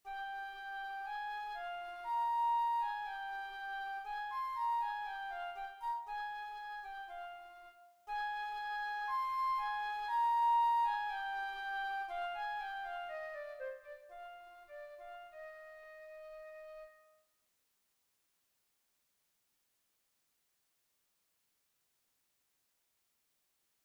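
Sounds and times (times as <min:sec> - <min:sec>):
flute etude: 0:00.0 - 0:17.2.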